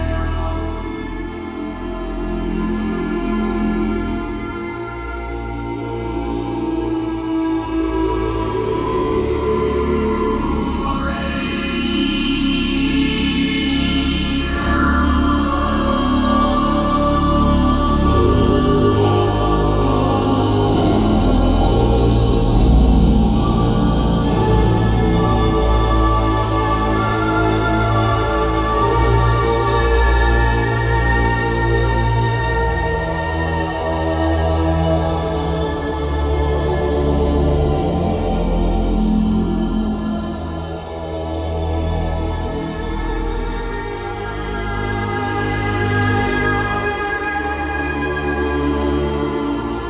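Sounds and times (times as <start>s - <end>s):
choir singing: 0.2s - 49.8s.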